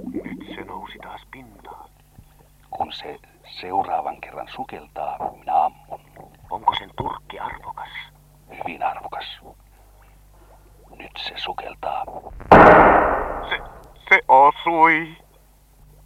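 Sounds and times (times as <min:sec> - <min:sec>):
speech: 0:00.8 - 0:01.8, 0:02.7 - 0:05.7, 0:06.6 - 0:09.6, 0:11.0 - 0:12.8, 0:13.5 - 0:15.2
loud gunshot with decay: 0:12.4 - 0:13.8.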